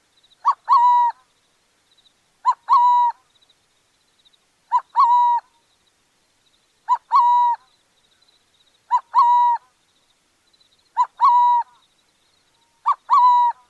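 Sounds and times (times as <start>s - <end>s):
burrowing owl calling: 0.4s - 1.3s, 2.4s - 3.3s, 4.7s - 5.6s, 6.8s - 7.7s, 8.8s - 9.7s, 10.9s - 11.9s, 12.6s - 13.6s.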